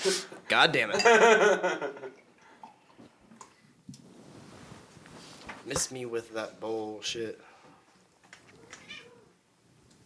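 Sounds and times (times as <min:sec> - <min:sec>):
speech: 0:00.0 - 0:02.0, 0:05.7 - 0:07.5
quiet noise: 0:00.0 - 0:10.0
cat meowing: 0:08.5 - 0:09.3.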